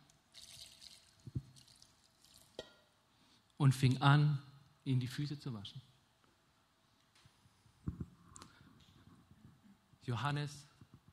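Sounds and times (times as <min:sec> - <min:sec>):
water poured into a bowl: 0:00.3 - 0:02.6
speech: 0:03.6 - 0:05.9, 0:10.1 - 0:10.7.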